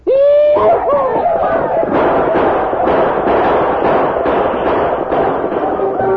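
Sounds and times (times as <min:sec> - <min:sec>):
loud rising war whoops of mounted braves: 0:00.0 - 0:03.0
people yelling and shouting in an attack: 0:00.0 - 0:06.1
laughter: 0:00.4 - 0:03.9
gunshots in a radio drama attack on a fort: 0:00.6 - 0:06.1.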